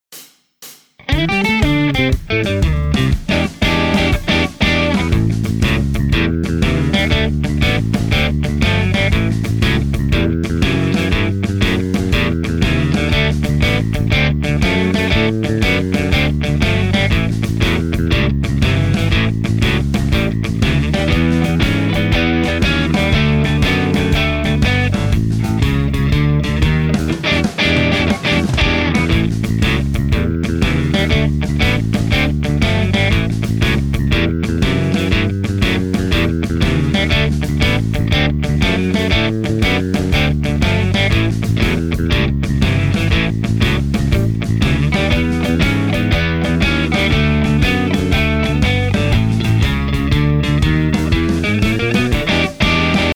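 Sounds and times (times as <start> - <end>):
blues karaoke singing: 1.1 - 53.1.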